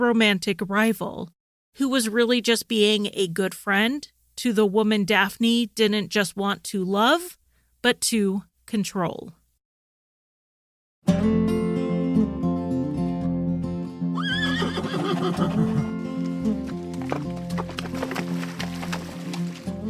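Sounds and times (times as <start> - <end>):
speech: 0.0 - 9.4
steady musical backdrop: 11.1 - 19.8
horse giving a loud wavering neigh: 14.2 - 16.2
sharp hoof clip-clops: 14.4 - 19.8.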